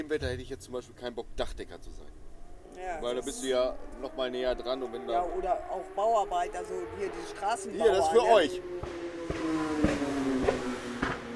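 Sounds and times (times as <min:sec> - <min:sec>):
speech: 0:00.0 - 0:09.6
car engine humming on a street: 0:00.0 - 0:11.3
knocks and clatters: 0:08.8 - 0:11.3.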